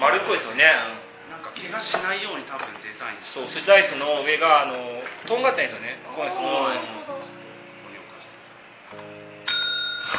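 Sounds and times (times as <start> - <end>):
speech: 0.0 - 7.4
press bell of a tabletop dice game struck: 9.4 - 10.1.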